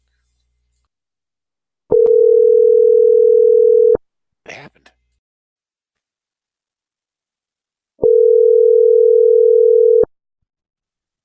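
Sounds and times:
steady telephone dial tone: 1.9s - 4.0s, 8.0s - 10.1s.

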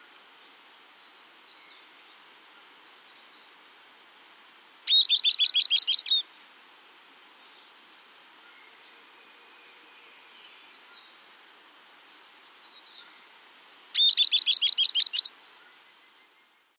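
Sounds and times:
faint thin calls: 4.8s - 6.3s, 13.0s - 15.8s.

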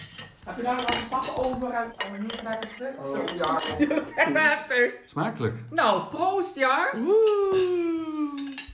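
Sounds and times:
knife and cutlery clinking and scraping on a plate cutting a slice of cake: 0.0s - 3.9s
speech: 0.5s - 8.5s.

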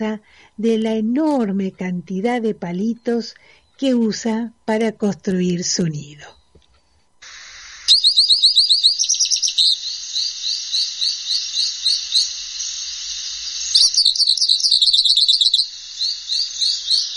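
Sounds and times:
speech: 0.0s - 6.4s, 8.0s - 9.8s
hooded siskin singing: 7.9s - 12.4s, 13.7s - 17.1s.

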